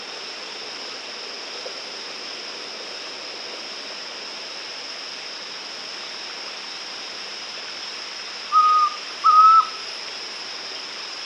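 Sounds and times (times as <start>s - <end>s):
faint steady hiss: 0.0s - 11.2s
White-throated antpitta song of two whistled notes in South America: 8.5s - 9.8s.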